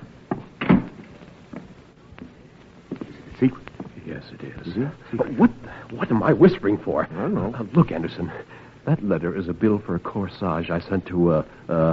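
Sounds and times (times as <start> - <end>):
door swinging shut with a solid thump: 0.6 - 1.0
speech: 3.4 - 11.9.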